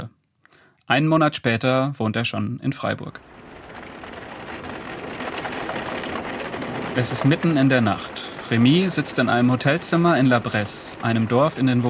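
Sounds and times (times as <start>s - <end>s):
speech: 0.9s - 3.4s, 7.0s - 11.8s
heavy rain pouring at night outside a hotel in La Bresse, Vosges: 2.9s - 11.8s.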